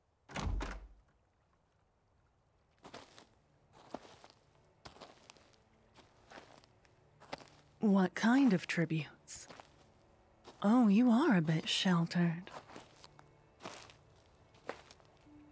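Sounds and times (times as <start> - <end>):
heavy door thunking open: 0.3 - 1.1
soft uneven footsteps across the floor: 2.8 - 7.8, 9.4 - 10.7, 12.4 - 15.5
speech: 7.8 - 9.5, 10.6 - 12.6.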